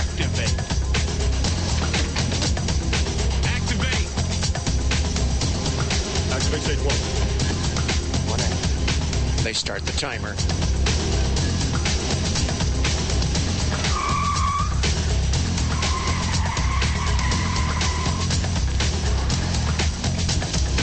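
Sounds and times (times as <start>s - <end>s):
black car road and engine noise while driving: 0.0s - 20.8s
speech: 9.6s - 10.8s
drawn-out tire squeals: 13.4s - 19.8s.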